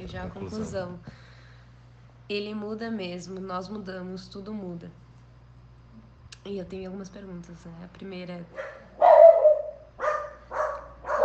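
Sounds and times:
speech: 0:00.1 - 0:01.2, 0:02.3 - 0:05.0, 0:06.4 - 0:08.8
dogs barking: 0:08.5 - 0:11.2.

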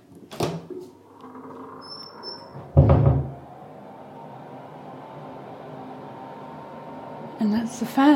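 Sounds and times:
door creaking open: 0:00.4 - 0:04.1
heavy thump: 0:02.7 - 0:03.3
speech: 0:07.4 - 0:08.1.

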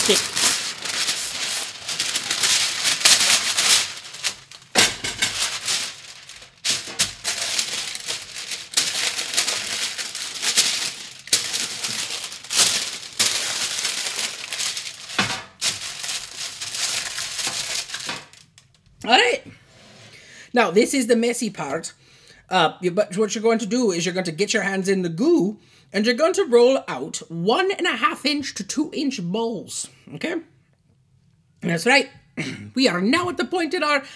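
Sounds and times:
parchment paper crinkling onto a metal cookie sheet: 0:00.0 - 0:19.0
speech: 0:00.1 - 0:00.5, 0:20.6 - 0:30.5, 0:31.6 - 0:34.1.

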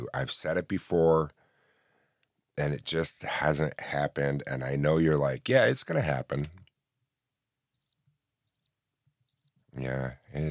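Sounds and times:
speech: 0:00.1 - 0:01.4, 0:02.6 - 0:06.6, 0:09.8 - 0:10.4
high pulsing cricket chirps: 0:07.7 - 0:08.7, 0:09.3 - 0:09.5, 0:10.1 - 0:10.4.

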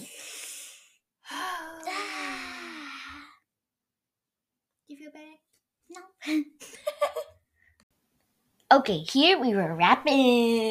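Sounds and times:
deep breath drawn in through the mouth: 0:00.0 - 0:01.7
speech: 0:05.0 - 0:06.8, 0:08.7 - 0:10.6.

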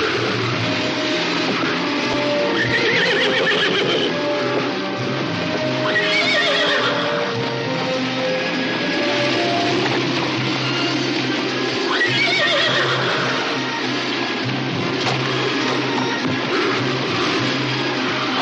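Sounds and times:
horse ridden by a child whinnying: 0:00.0 - 0:00.6, 0:01.6 - 0:04.7, 0:05.7 - 0:07.4, 0:11.8 - 0:13.6
busy continuous noise: 0:00.0 - 0:18.3
horse hooves clopping: 0:00.0 - 0:18.3.

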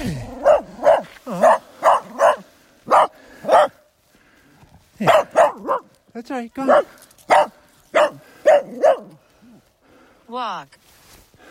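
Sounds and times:
dachshund barking while greeting someone: 0:00.3 - 0:03.8, 0:05.0 - 0:06.0, 0:06.6 - 0:09.2
speech: 0:06.2 - 0:07.5.

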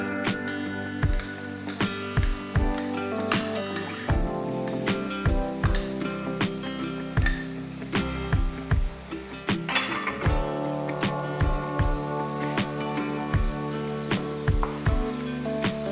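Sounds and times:
garlic frying with browning onions in a hot pan: 0:00.0 - 0:15.8.

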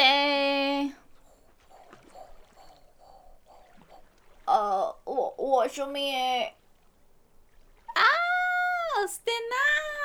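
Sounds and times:
boat engine chugging on water: 0:00.0 - 0:06.5
speech: 0:05.7 - 0:06.6, 0:09.0 - 0:09.9.

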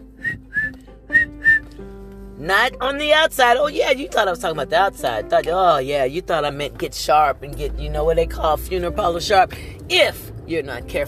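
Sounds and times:
person whistling: 0:00.1 - 0:01.8
speech: 0:02.4 - 0:11.0.

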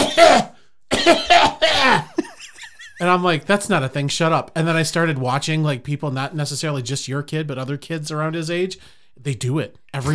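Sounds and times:
person mimicking a short nervous cough: 0:00.0 - 0:02.3
speech: 0:01.0 - 0:01.6, 0:03.0 - 0:10.1.

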